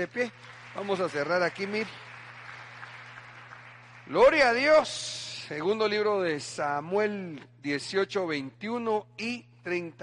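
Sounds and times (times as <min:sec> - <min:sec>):
speech: 0:00.0 - 0:02.1, 0:04.1 - 0:10.0
crowd clapping: 0:00.0 - 0:05.8
low steady hum: 0:00.0 - 0:10.0.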